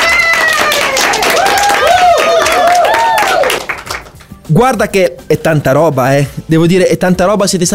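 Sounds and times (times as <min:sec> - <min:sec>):
excited high voices cheering: 0:00.0 - 0:03.7
crowd applause for children: 0:00.0 - 0:04.3
speech: 0:04.5 - 0:07.7.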